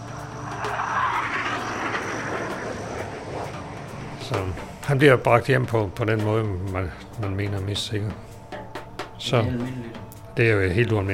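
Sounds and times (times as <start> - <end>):
low droning hum: 0.0 - 6.6
military transport aircraft engine roar: 0.0 - 7.2
speech: 4.3 - 8.3, 9.2 - 11.1.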